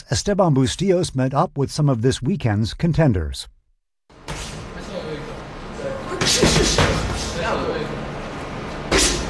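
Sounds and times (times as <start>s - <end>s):
speech: 0.1s - 3.5s, 6.3s - 8.0s
fists striking punching bags in an echoing gym: 6.2s - 7.3s, 8.9s - 9.2s.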